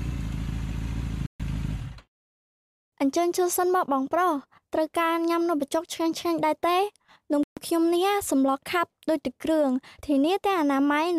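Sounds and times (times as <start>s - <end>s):
motorcycle riding up and stopping with a low engine rumble: 0.0s - 2.0s
speech: 3.0s - 11.1s.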